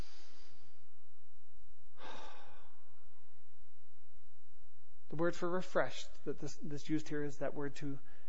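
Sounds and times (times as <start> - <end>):
people breathing in deeply and exhaling together: 0.0 - 0.9, 1.9 - 3.2
speech: 5.2 - 8.1.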